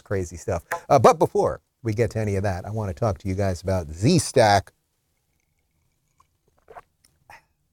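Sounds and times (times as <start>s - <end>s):
speech: 0.1s - 4.8s
person sipping coffee: 5.4s - 7.5s.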